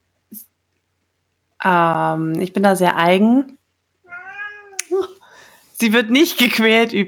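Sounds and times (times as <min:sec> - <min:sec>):
speech: 0:01.6 - 0:03.6, 0:05.8 - 0:07.0
cat yowling for attention: 0:04.1 - 0:04.9.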